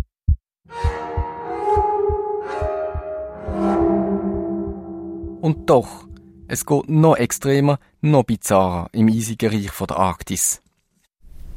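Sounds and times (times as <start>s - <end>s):
steady fairly fast heartbeat thumping: 0.0s - 5.7s
sustained tonal drone: 1.0s - 7.8s
speech: 5.5s - 10.6s.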